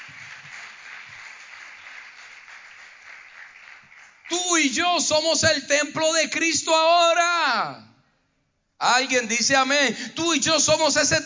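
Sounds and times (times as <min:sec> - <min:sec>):
church audience applause during a sermon: 0:00.0 - 0:04.4
speech: 0:04.6 - 0:07.9, 0:08.8 - 0:11.2.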